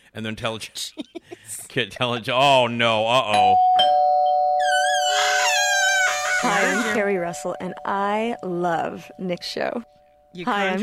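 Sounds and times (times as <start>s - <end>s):
speech: 0.2s - 3.9s, 6.4s - 10.8s
doorbell ringing with a steady sustained tone: 3.3s - 9.9s
wavering warbling chime: 4.6s - 10.6s.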